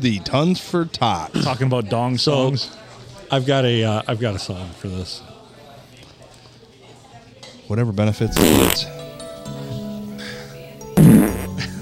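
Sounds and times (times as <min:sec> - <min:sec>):
speech: 0:00.0 - 0:05.3, 0:07.7 - 0:09.0
loud blaring fart: 0:08.4 - 0:08.9, 0:11.0 - 0:11.6.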